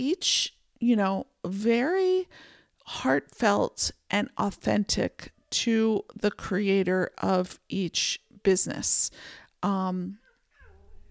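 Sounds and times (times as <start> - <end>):
speech: 0.0 - 10.2
cat meowing: 10.2 - 11.0.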